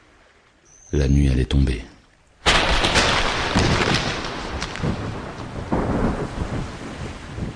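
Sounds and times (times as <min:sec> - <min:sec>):
steady rain: 0:00.0 - 0:07.5
speech: 0:00.9 - 0:01.9
rolling thunder: 0:02.4 - 0:07.5.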